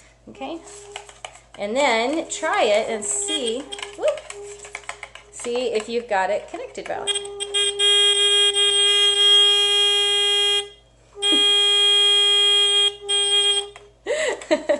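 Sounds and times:
speech: 0.3s - 1.0s, 1.6s - 4.4s, 5.4s - 7.4s
electric buzzer on a wire tester: 3.2s - 3.9s, 7.1s - 13.8s.

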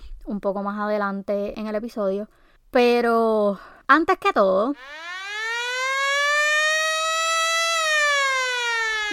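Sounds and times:
speech: 0.3s - 5.1s
siren wailing: 4.8s - 9.1s.

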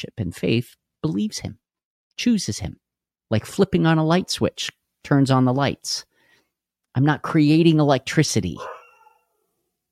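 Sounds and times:
speech: 0.0s - 1.6s, 2.2s - 6.1s, 7.0s - 8.8s
dog barking excitedly: 8.6s - 9.4s.

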